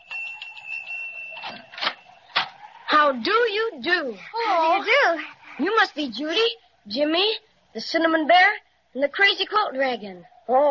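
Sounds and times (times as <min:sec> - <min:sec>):
bell rung at a door: 0:00.0 - 0:02.4
speech: 0:03.0 - 0:10.6.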